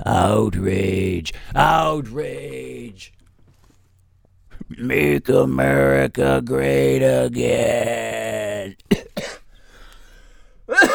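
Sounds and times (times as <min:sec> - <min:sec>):
speech: 0:00.2 - 0:03.2, 0:04.7 - 0:08.8
harsh coughs: 0:08.9 - 0:09.5, 0:10.7 - 0:10.9.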